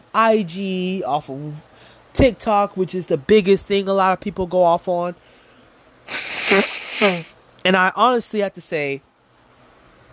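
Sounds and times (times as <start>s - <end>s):
speech: 0.2s - 5.3s, 6.5s - 9.1s
breathy nasal rush of air: 5.7s - 7.4s
throaty voiced bursts: 6.1s - 7.4s.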